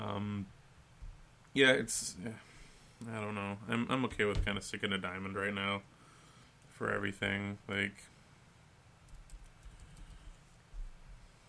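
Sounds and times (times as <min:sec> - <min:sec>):
speech: 0:01.6 - 0:05.9, 0:06.8 - 0:08.1
typing on a computer keyboard: 0:09.1 - 0:10.3.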